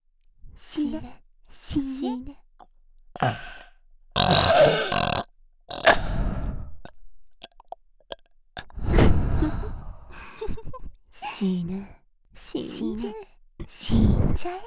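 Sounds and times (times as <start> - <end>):
speech: 0.6 - 2.4, 3.2 - 3.6, 11.4 - 14.6
person burping loudly: 3.2 - 3.5, 4.2 - 6.1, 7.4 - 8.2
small breathy noises: 3.2 - 9.6, 14.4 - 14.6.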